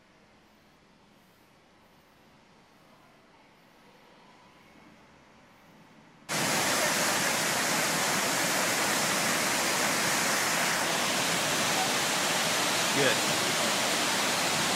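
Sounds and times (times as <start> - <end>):
waterfall pouring into a pool: 6.3 - 14.7.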